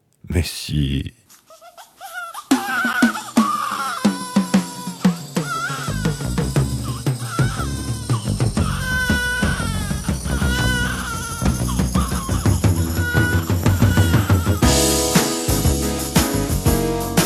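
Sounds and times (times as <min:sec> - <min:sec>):
speech: 0:00.4 - 0:01.2
baby crying and babbling: 0:01.5 - 0:14.6
bass in an upbeat song: 0:06.0 - 0:17.2.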